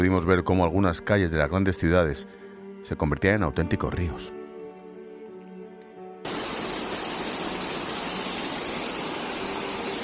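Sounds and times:
speech: 0:00.0 - 0:04.4
floodwater from heavy rain pouring down a metro entrance in Madrid Spain: 0:06.3 - 0:10.0.

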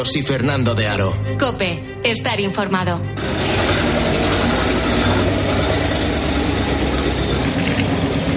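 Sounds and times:
speech: 0:00.0 - 0:04.2
engine of a bus carrying soldiers from the Azovstal steelworks rumbling: 0:03.2 - 0:08.3.

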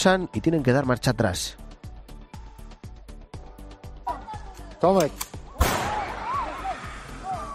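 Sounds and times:
speech: 0:00.0 - 0:01.6, 0:04.8 - 0:05.4
migrants and people shouting at the Belarusian border with Poland: 0:05.5 - 0:07.5
gunshots fired into the air at the Belarusian border with Poland: 0:05.6 - 0:06.3.

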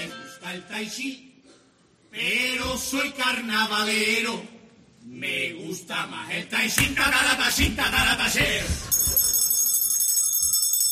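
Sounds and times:
speech: 0:00.5 - 0:01.3, 0:02.1 - 0:08.9
bell ringing with a bright high metallic tone: 0:08.9 - 0:10.8.

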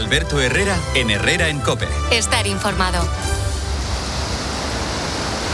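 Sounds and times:
speech: 0:00.1 - 0:03.3
rushing floodwater from a swollen river: 0:03.7 - 0:05.5.

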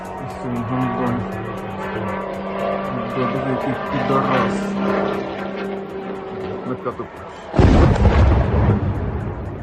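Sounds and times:
Shahed kamikaze drone engine buzzing overhead: 0:00.0 - 0:09.6
loud explosion: 0:07.6 - 0:09.6.

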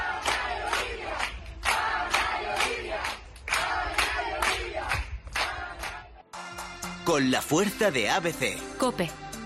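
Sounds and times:
large crowd clapping in a steady rhythmic beat: 0:00.0 - 0:06.2
speech: 0:07.1 - 0:09.4.

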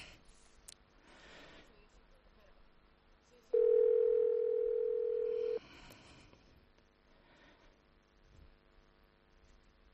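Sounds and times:
quiet noise: 0:00.0 - 0:09.9
telephone ringback tone while a call is placed to a private home: 0:03.6 - 0:05.6.

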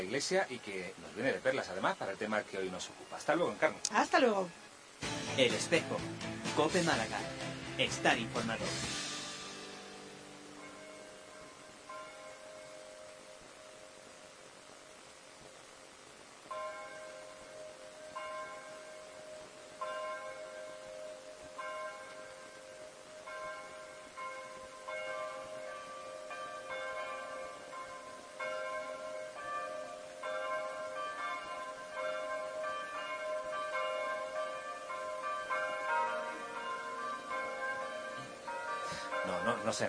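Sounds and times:
speech: 0:00.0 - 0:09.0
monastery church bells ringing: 0:07.8 - 0:14.1, 0:16.5 - 0:39.8.

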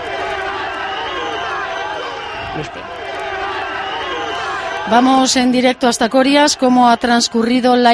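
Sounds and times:
crowd of protesters booing and shouting: 0:00.0 - 0:07.9
sharp whistles from protesters: 0:00.6 - 0:05.1
speech: 0:02.6 - 0:03.0, 0:04.9 - 0:07.9.

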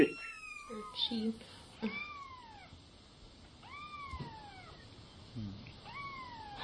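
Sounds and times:
cat meowing: 0:00.0 - 0:02.8, 0:03.6 - 0:04.8, 0:05.8 - 0:06.6
faint hiss: 0:00.0 - 0:06.6
speech: 0:01.0 - 0:02.0.

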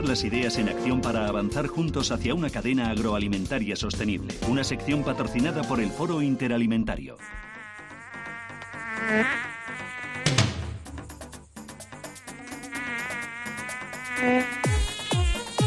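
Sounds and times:
speech: 0:00.0 - 0:07.5, 0:09.0 - 0:09.8
housefly buzzing: 0:07.2 - 0:15.6.

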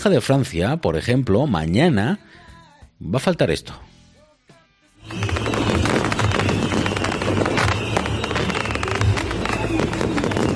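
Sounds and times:
speech: 0:00.0 - 0:02.4, 0:03.0 - 0:03.9
dense barrage of fireworks bursting and crackling: 0:05.0 - 0:10.5
faint crowd noise: 0:05.0 - 0:10.5.

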